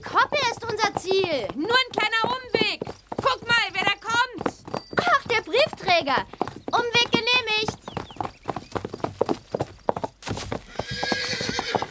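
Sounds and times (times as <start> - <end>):
horse hooves clip-clopping as riders head toward a paddock: 0.0 - 11.9
horse whinnying: 10.6 - 11.9.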